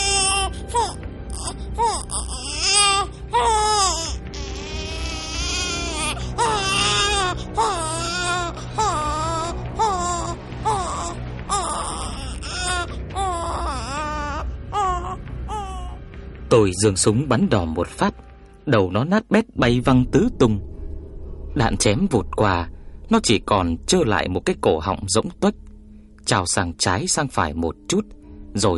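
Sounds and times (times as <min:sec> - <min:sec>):
wounded monster wailing while thrashing on the ground: 0:00.0 - 0:16.0
speech: 0:16.6 - 0:18.1, 0:18.7 - 0:20.7, 0:21.6 - 0:25.6, 0:26.3 - 0:28.7.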